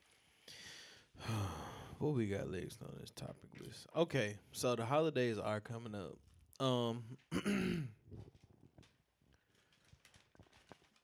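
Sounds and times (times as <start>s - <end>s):
speech: 1.2s - 8.4s
deep throaty belch after drinking beer: 7.3s - 8.1s.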